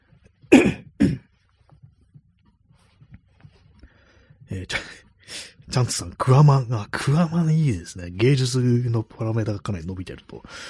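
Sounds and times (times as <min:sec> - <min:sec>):
throat clearing: 0:00.5 - 0:01.4
speech: 0:04.5 - 0:10.6.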